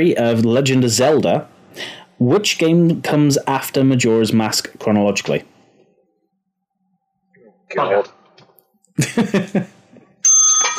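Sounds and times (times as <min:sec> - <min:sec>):
speech: 0:00.0 - 0:05.5, 0:07.7 - 0:08.2, 0:09.0 - 0:09.7
laughter: 0:09.0 - 0:10.0
bell ringing during a quiz game: 0:10.2 - 0:10.7.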